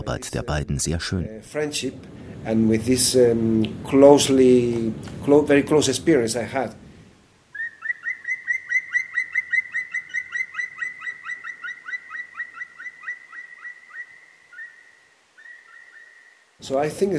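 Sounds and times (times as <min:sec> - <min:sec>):
speech: 0:00.0 - 0:06.8, 0:16.7 - 0:17.1
bird singing: 0:07.5 - 0:16.6.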